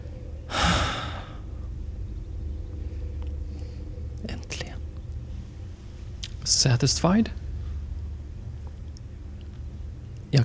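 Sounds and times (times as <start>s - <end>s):
low steady rumble of noise: 0.0s - 10.4s
deep breathy exhale after holding breath: 0.5s - 1.5s
speech: 6.5s - 7.4s.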